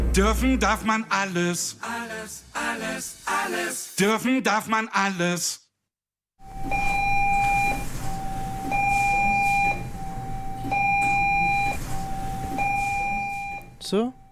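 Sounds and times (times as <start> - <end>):
speech: 0.2 - 5.6, 13.9 - 14.2
electronic doorbell ringing with two alternating tones: 6.4 - 14.2.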